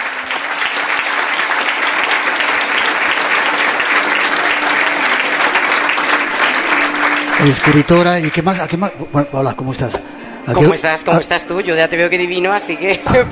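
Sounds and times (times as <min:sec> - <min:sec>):
sizable audience applauding at a crowded event: 0:00.0 - 0:09.2
speech: 0:07.4 - 0:13.3.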